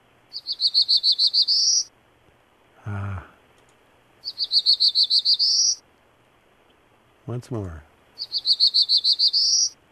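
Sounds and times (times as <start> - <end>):
Black-throated warbler singing: 0.3 - 1.9, 4.2 - 5.8, 8.2 - 9.8
speech: 0.4 - 1.9, 2.8 - 3.4, 4.7 - 5.8, 7.3 - 9.8.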